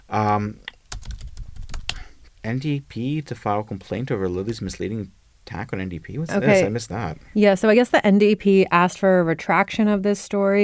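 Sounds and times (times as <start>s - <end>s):
speech: 0.1s - 0.7s, 2.4s - 10.6s
typing a search on a computer keyboard: 0.9s - 2.0s.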